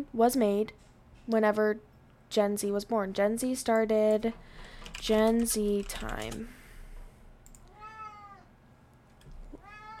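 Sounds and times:
speech: 0.0s - 6.6s
low hum: 0.0s - 9.9s
cat meowing: 7.7s - 8.5s, 9.5s - 9.9s.

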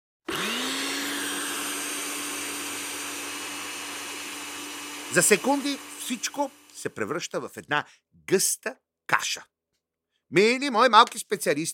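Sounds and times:
kitchen blender motor whining and roaring: 0.3s - 7.0s
speech: 5.1s - 9.5s, 10.3s - 11.7s.

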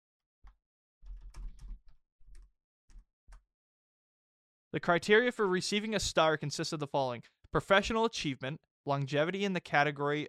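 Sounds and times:
keys clacking on a computer keyboard: 1.1s - 2.5s
speech: 4.7s - 10.2s.

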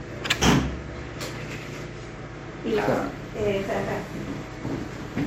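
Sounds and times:
door shutting with a solid thud and rattle: 0.2s - 0.8s
speech: 2.6s - 5.2s.

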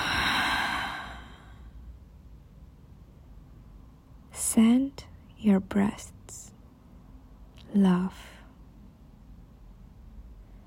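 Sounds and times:
slow full exhale after a deep breath: 0.0s - 1.7s
speech: 4.6s - 6.5s, 7.7s - 8.3s.

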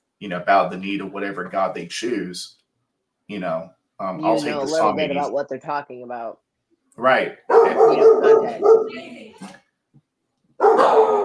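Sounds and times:
speech: 0.2s - 2.6s, 3.3s - 6.4s, 7.0s - 9.6s
dogs barking and yapping: 7.4s - 9.0s, 10.6s - 11.2s.

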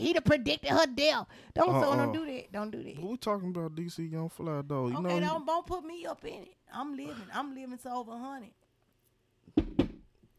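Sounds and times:
speech: 0.0s - 8.6s
knocks on a wooden surface: 9.5s - 10.1s.

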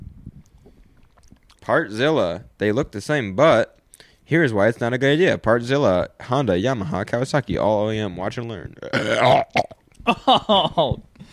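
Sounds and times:
speech: 1.6s - 11.3s
throaty voiced belching: 8.6s - 11.0s
loud burp: 8.8s - 9.9s.

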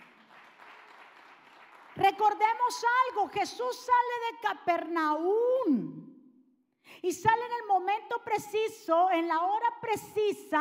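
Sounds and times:
audience applauding: 0.0s - 2.0s
speech: 2.0s - 6.0s, 7.0s - 10.5s.

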